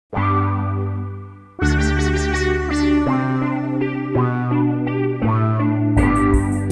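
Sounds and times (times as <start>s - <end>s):
small Moog synthesizer: 0.2s - 6.6s.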